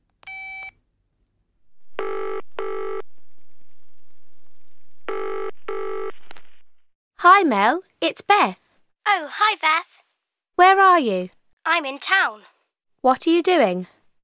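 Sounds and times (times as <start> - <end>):
telephone ringback tone double rings: 1.9 - 3.0, 5.1 - 6.2
speech: 7.2 - 10.0, 10.6 - 14.0.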